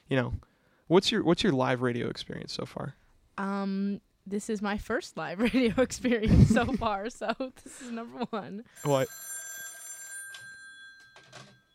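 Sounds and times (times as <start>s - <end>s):
speech: 0.1s - 9.3s
laughter: 5.4s - 7.1s
telephone ringing with a bright electronic trill: 8.8s - 11.7s.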